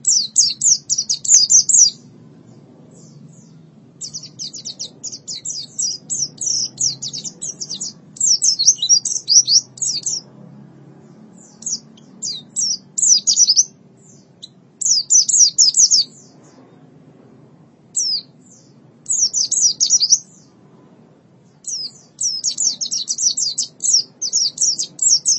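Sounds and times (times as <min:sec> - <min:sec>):
white-eye chirping song: 0:00.0 - 0:17.0, 0:18.0 - 0:20.6, 0:21.4 - 0:25.3
faint background hum: 0:00.0 - 0:25.3.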